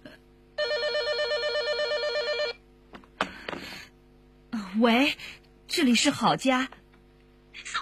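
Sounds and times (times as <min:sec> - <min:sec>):
telephone ringing with a warbling electronic trill: 0:00.6 - 0:02.6
speech: 0:04.8 - 0:06.8.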